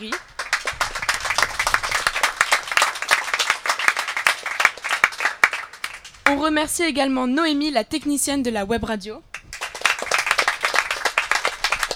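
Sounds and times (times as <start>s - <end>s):
speech: 0.0s - 0.3s, 6.4s - 9.3s
crowd applauding: 0.0s - 6.4s, 9.3s - 11.9s.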